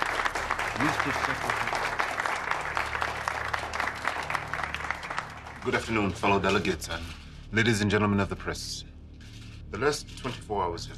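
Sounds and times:
crowd applauding at a press event: 0.0s - 6.4s
low hum: 0.0s - 10.9s
speech: 0.8s - 1.8s, 5.6s - 8.9s, 9.7s - 10.9s.

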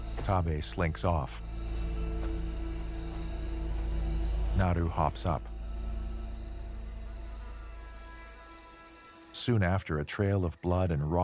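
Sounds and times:
flies buzzing around rotting animal flesh: 0.0s - 9.8s
speech: 0.3s - 1.5s, 4.6s - 5.5s, 9.5s - 11.2s.

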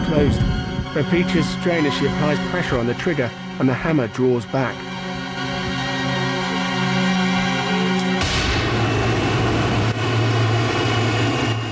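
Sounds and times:
airliner jet engine turbine whining and roaring: 0.0s - 11.7s
speech: 0.1s - 4.9s.

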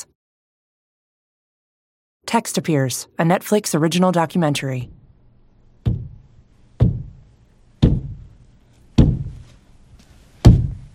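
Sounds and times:
speech: 2.3s - 5.0s
heavy dull thuds against a gypsum board wall: 5.8s - 6.2s, 6.8s - 7.2s, 7.8s - 8.3s, 9.0s - 9.4s, 10.4s - 10.9s.

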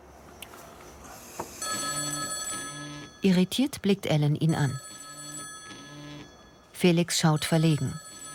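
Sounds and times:
smartphone electronic ringing tone: 1.6s - 8.3s
speech: 3.2s - 4.9s, 6.8s - 8.0s.

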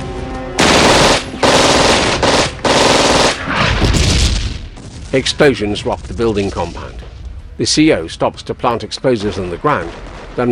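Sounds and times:
guards' guns firing automatic gunfire near a building compound: 0.6s - 3.5s
speech: 5.1s - 10.5s.

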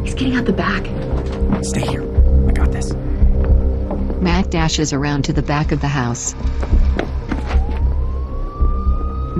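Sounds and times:
speech: 0.2s - 3.2s, 4.2s - 7.1s
police car siren wailing as the car pulls up: 6.7s - 9.3s.

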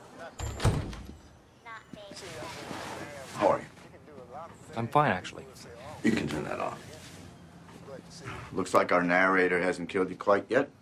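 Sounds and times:
door opening with latch and handle thunk: 0.4s - 1.3s
speech: 4.8s - 6.9s, 8.5s - 10.7s.

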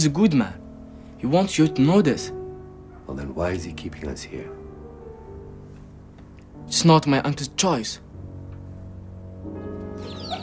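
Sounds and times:
speech: 0.0s - 0.6s, 1.2s - 2.4s, 3.1s - 4.6s, 6.7s - 8.0s
chirpy calls: 9.9s - 10.4s
chickens clucking in a courtyard: 10.0s - 10.4s.

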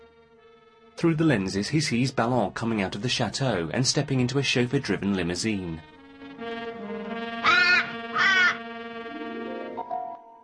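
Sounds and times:
steady sustained tonal backdrop: 0.0s - 10.4s
speech: 1.0s - 6.0s
crow cawing in a tree: 7.4s - 8.6s.

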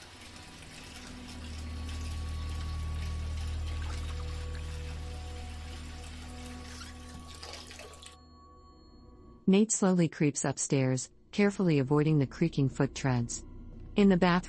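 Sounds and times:
bath water running from a tap in a bathroom: 0.0s - 8.2s
speech: 9.5s - 14.4s.

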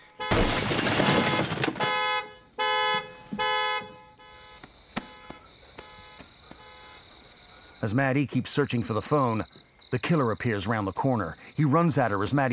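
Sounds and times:
car alarm honking: 0.0s - 7.3s
car window glass shattering as it is smashed with an elbow: 0.2s - 2.2s
speech: 7.8s - 12.5s.

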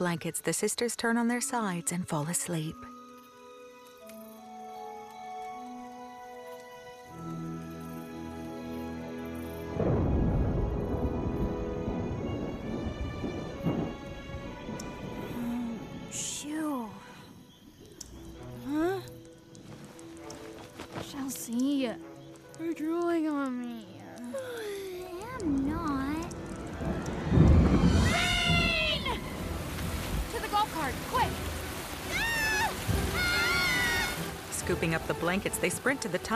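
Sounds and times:
speech: 0.0s - 3.0s, 35.5s - 36.3s
steady rain: 0.0s - 36.3s
heavy rumble of thunder: 9.7s - 17.4s, 25.1s - 36.3s.

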